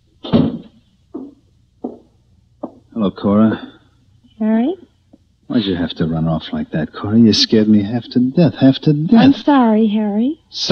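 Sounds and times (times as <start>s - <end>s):
door being closed with a heavy dull thud: 0.2s - 2.8s
soft knocks: 0.2s - 2.9s
speech: 3.0s - 3.7s, 4.4s - 4.9s, 5.5s - 10.7s.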